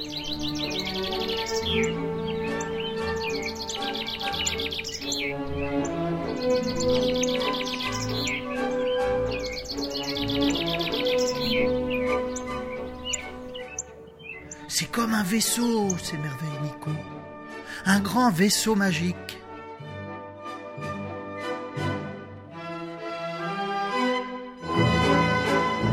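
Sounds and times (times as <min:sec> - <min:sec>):
dense chorus of birds chirping and trilling: 0:00.0 - 0:22.8, 0:24.0 - 0:25.9
sustained tonal backdrop: 0:00.0 - 0:25.9
speech: 0:15.0 - 0:17.1, 0:17.8 - 0:19.2.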